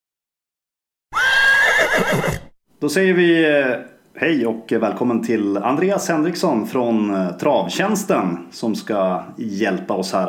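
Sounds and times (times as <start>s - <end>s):
horse neighing: 1.1s - 2.6s
speech: 2.8s - 10.2s.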